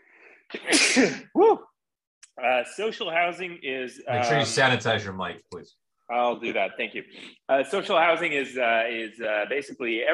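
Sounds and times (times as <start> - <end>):
loud sneeze: 0.5 - 1.4
speech: 0.5 - 1.7, 2.4 - 10.1.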